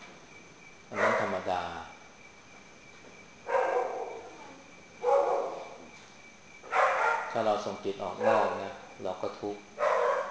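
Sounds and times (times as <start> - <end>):
dog barking faintly in a forest: 0.9 - 1.5, 3.5 - 5.8, 6.7 - 7.4, 8.0 - 8.9, 9.8 - 10.3
speech: 7.4 - 9.8.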